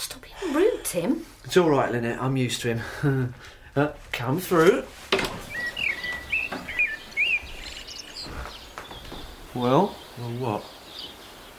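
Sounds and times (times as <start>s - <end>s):
speech: 0.4s - 5.2s, 9.6s - 10.8s
cuckoo calling played from a tape recording: 5.2s - 11.5s.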